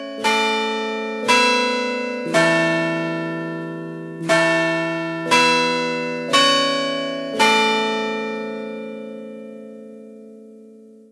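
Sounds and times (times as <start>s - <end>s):
electronic carillon melodic chime: 0.0s - 9.1s
deeper bell striking the hour: 1.3s - 6.2s.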